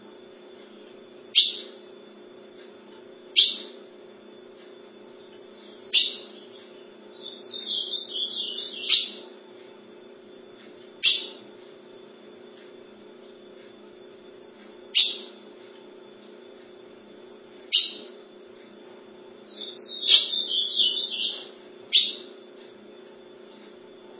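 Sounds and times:
low background hum: 0.0 - 24.1
ultramarine grosbeak warbling whistled song phrase: 1.4 - 1.8, 3.4 - 3.8, 5.5 - 9.4, 11.0 - 11.4, 14.9 - 15.4, 17.7 - 18.2, 19.5 - 22.4.

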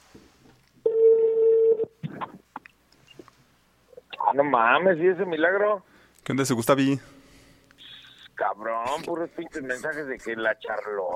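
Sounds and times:
telephone ringback tone on an outgoing call: 0.9 - 1.8
speech: 4.4 - 7.2, 8.6 - 11.1.

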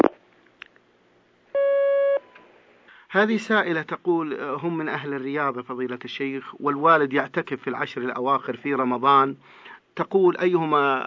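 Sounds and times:
telephone line tone as a phone call connects: 1.6 - 2.3
speech: 3.1 - 11.0.

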